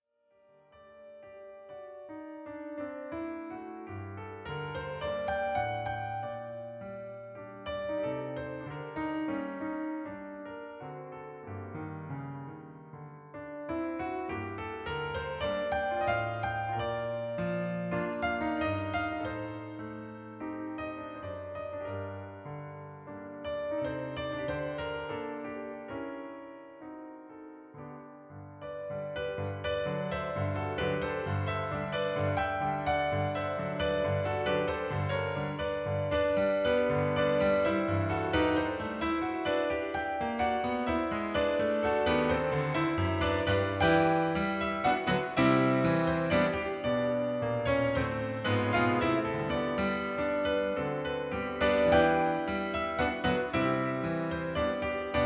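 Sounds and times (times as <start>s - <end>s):
Yamaha CP4 stage piano CFX barcarolle: 0.3s - 55.2s.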